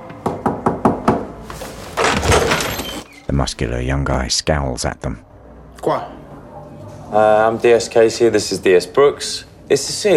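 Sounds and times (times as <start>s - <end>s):
sharp knocks on a flat door: 0.1s - 1.3s
speech: 3.3s - 6.1s, 7.1s - 10.1s.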